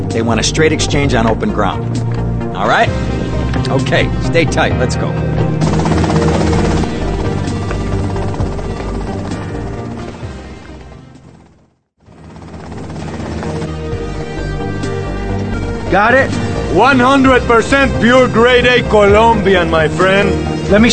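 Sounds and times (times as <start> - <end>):
speech: 0.1 - 5.7, 15.9 - 20.9
helicopter rotor thumping as it approaches: 5.4 - 19.7.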